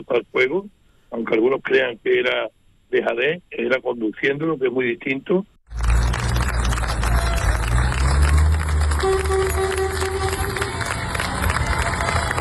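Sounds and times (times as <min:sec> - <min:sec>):
speech: 0:00.0 - 0:05.5
townspeople crowd in Niebla applauding: 0:05.7 - 0:12.3
townspeople crowd in Niebla cheering in farewell to military emergency troops: 0:05.7 - 0:12.3.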